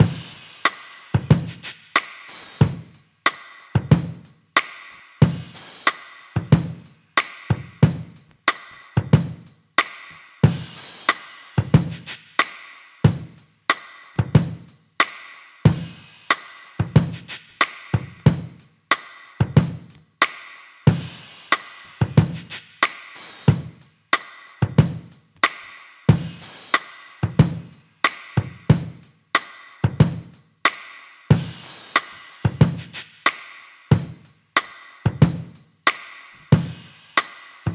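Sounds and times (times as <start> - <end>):
drum groove with kick drum tuned to E: 0.0 - 3.0, 3.8 - 12.5, 13.1 - 14.8, 15.7 - 29.1, 29.8 - 30.4, 31.3 - 37.7.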